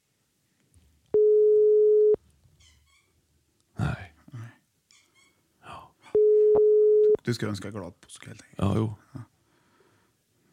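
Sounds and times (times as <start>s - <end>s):
faint noise: 0.0s - 10.5s
phone call ringback tone: 1.2s - 2.2s, 6.2s - 7.2s
speech: 7.2s - 9.3s.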